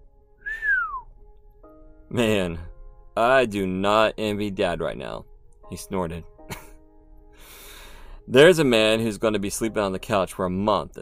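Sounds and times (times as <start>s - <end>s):
short low human whistle: 0.4s - 1.1s
speech: 2.1s - 6.3s, 8.3s - 11.0s.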